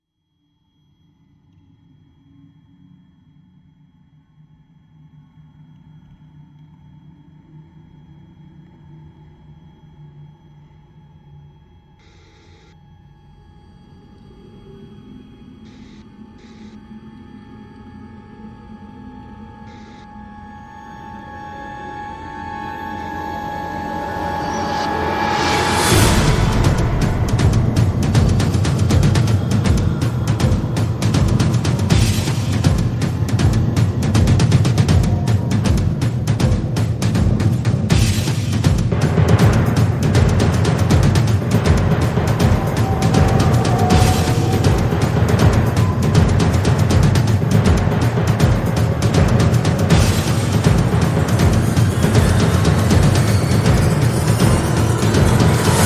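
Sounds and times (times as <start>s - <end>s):
synth pads: 12.6s - 55.8s
percussion: 22.6s - 55.8s.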